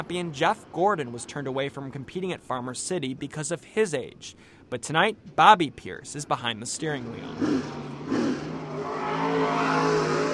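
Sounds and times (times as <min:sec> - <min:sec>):
speech: 0:00.1 - 0:08.2
race car engine revving while driven back to the pit: 0:06.8 - 0:10.3.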